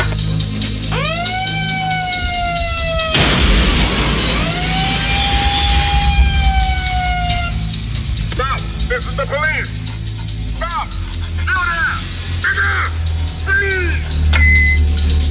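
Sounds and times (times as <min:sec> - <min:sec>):
loud electronic siren from a megaphone horn: 0:00.6 - 0:15.1
harsh burst of noise: 0:02.8 - 0:10.5.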